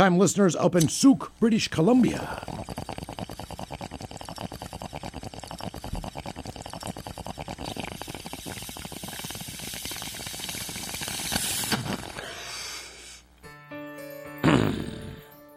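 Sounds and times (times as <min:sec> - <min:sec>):
speech: 0:00.0 - 0:02.8
bubbling water of a bong during inhale: 0:01.7 - 0:12.2
person exhaling: 0:09.2 - 0:13.3.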